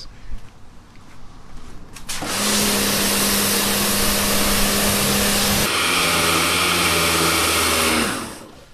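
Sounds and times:
pressure washer running, motor hum and hiss of spray: 2.1s - 8.7s.

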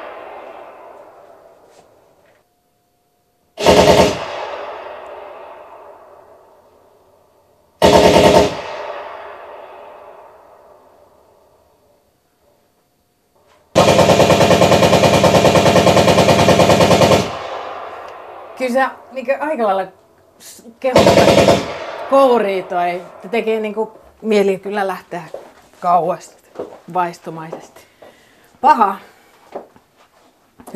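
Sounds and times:
recorded machine-gun fire recreating trench-warfare machine-gun nests: 3.6s - 6.2s, 7.8s - 10.6s, 13.7s - 19.1s, 20.9s - 23.8s
speech: 18.8s - 27.8s, 28.6s - 29.7s.

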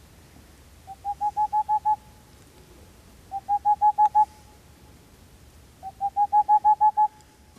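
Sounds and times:
recording of an owl's rhythmic spring hooting call: 0.8s - 2.2s, 3.3s - 4.6s, 5.8s - 7.2s.

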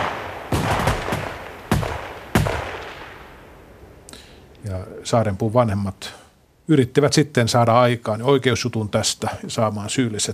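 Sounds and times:
gunshots of an execution by shooting: 0.0s - 3.4s
speech: 5.0s - 10.3s.

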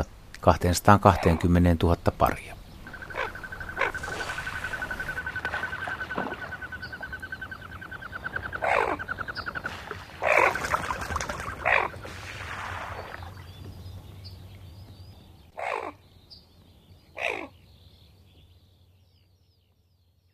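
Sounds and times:
speech: 0.0s - 2.6s
low background noise: 0.0s - 20.3s
Common Goldeneye buzzy calls: 2.8s - 12.1s.

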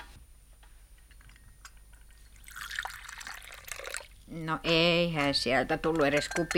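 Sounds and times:
coffee pouring into a cup: 2.2s - 4.2s
speech: 4.4s - 6.5s.

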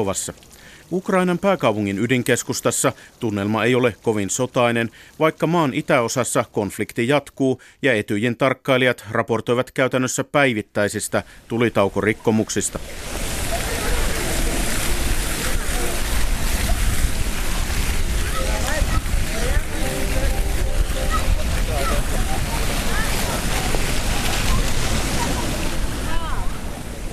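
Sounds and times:
fountains splashing on Independence Square in central Kyiv Ukraine: 0.0s - 6.8s, 11.2s - 27.1s
speech: 0.0s - 13.4s
children playing and chattering in fountain water: 13.0s - 27.1s.

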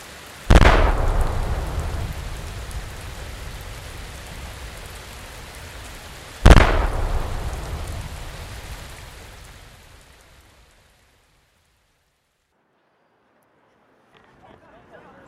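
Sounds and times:
steady rain hissing at a misty Helsinki harbour: 0.0s - 12.6s
fortress cannons firing salute shots: 0.5s - 9.7s.

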